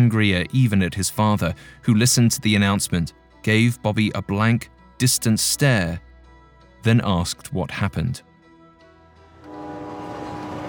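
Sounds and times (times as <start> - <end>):
speech: 0.0 - 6.1, 6.8 - 8.3
train from New Jersey rumbling by: 9.4 - 10.6.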